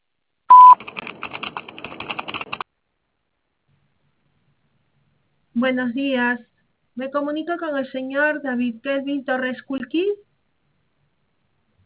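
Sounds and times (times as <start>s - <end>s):
answering machine beep: 0.5s - 0.8s
speech: 5.6s - 10.2s.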